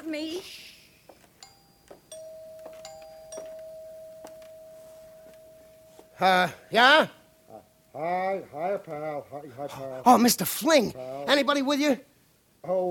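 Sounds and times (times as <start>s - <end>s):
doorbell ringing with a long electronic tone: 1.3s - 7.6s
speech: 6.2s - 7.2s, 8.0s - 12.8s.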